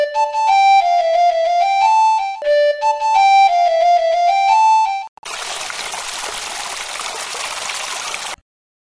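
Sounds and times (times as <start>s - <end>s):
bright piped melody: 0.0s - 5.1s
flowing river water: 5.2s - 8.4s.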